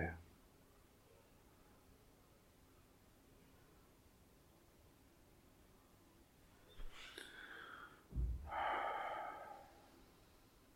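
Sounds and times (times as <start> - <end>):
slow deep breathing: 6.9 - 10.7.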